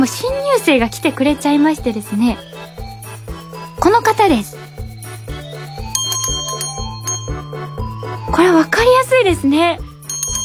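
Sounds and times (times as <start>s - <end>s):
speech: 0.0s - 2.8s, 3.8s - 4.8s, 8.3s - 9.9s
hand bell ringing in bright metallic tones: 5.0s - 8.3s, 10.0s - 10.4s.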